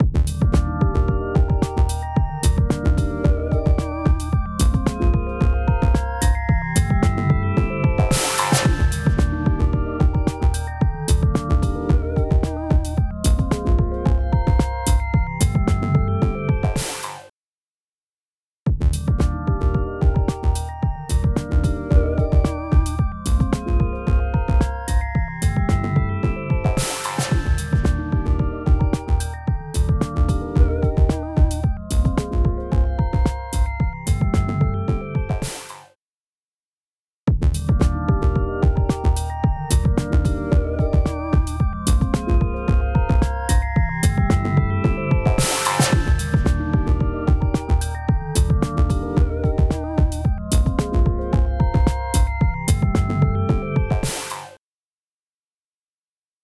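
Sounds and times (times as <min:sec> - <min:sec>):
electronic beat: 0:00.0 - 0:17.2, 0:18.7 - 0:35.7, 0:37.3 - 0:54.5.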